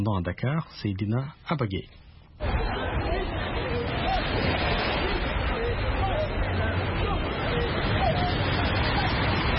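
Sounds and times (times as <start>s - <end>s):
speech: 0.0s - 2.8s
many voices chattering and calling on a beach: 2.4s - 9.5s
surf on a busy beach: 2.4s - 9.5s.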